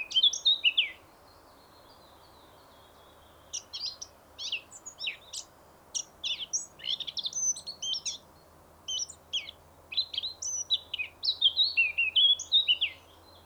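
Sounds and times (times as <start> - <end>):
Eurasian blackcap Sylvia atricapilla song: 3.4 - 13.4.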